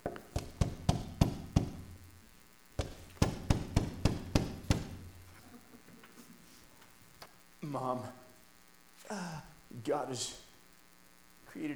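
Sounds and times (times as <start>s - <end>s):
firm knocks on a door: 0.4s - 1.8s, 2.8s - 5.0s
speech: 7.8s - 8.2s, 9.1s - 10.4s, 11.6s - 11.7s.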